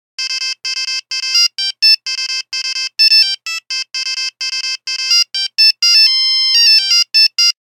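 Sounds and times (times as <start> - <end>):
Nokia 5110 buzzer: 0.2 - 7.6.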